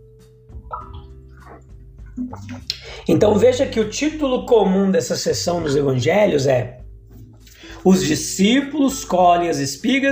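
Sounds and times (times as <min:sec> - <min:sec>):
person sipping water with wet slurps and swallows: 0:00.7 - 0:03.0
speech: 0:02.2 - 0:06.8, 0:07.8 - 0:10.1.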